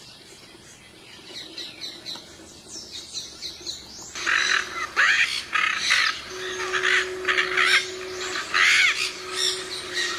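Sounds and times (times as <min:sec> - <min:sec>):
yellow-collared macaw screeching with rough raspy calls: 0:04.2 - 0:10.1.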